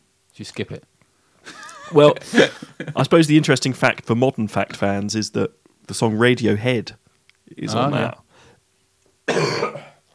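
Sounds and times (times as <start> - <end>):
speech: 0.4 - 0.9, 1.9 - 8.2, 9.3 - 9.8
laughter: 1.5 - 3.4
brief throat-clearing rasp: 9.3 - 10.0
single forceful cough: 9.3 - 10.0.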